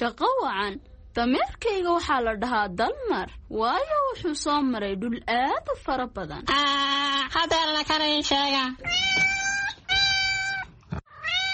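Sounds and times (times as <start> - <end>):
speech: 0.0 - 9.3
cat meowing: 8.8 - 11.5.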